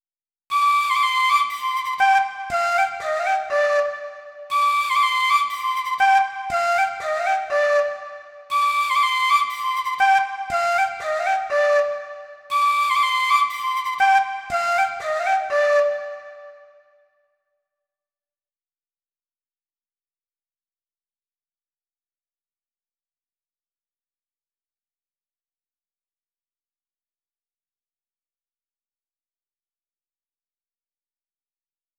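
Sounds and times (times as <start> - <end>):
flute in C minor: 0.5 - 17.4.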